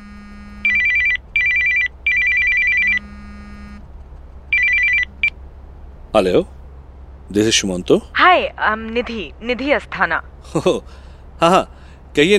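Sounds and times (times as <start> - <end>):
telephone ringing with bright electronic trills: 0.0 - 3.8, 4.5 - 5.3
faint low hum: 0.0 - 12.3
speech: 6.1 - 6.6, 7.3 - 12.3.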